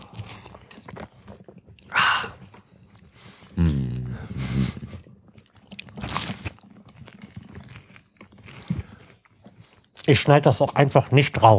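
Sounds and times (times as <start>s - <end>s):
people chewing and crunching food: 0.0s - 11.5s
person humming: 3.6s - 4.6s
speech: 10.1s - 11.5s.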